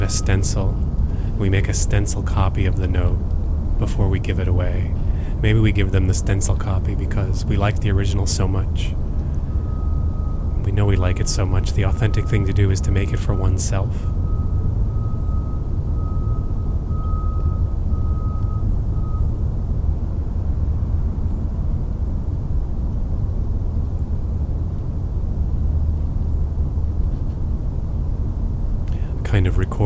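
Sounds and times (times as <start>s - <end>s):
faint tone: 0.0s - 3.2s, 3.8s - 19.5s
speech: 0.0s - 9.0s, 10.7s - 14.2s
passing trucks rumbling: 0.0s - 29.8s
wind among trees and tombstones: 0.0s - 29.8s.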